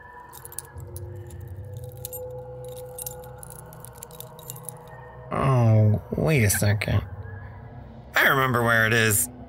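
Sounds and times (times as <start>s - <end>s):
low steady hum: 0.0s - 9.4s
ring of keys being shuffled through: 0.1s - 5.3s
speech: 5.3s - 7.1s, 8.4s - 9.3s.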